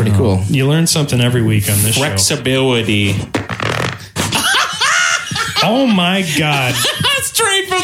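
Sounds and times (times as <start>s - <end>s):
speech: 0.1s - 3.4s, 5.6s - 7.1s
loud raspy fart: 3.3s - 4.3s
laughter: 4.2s - 7.8s.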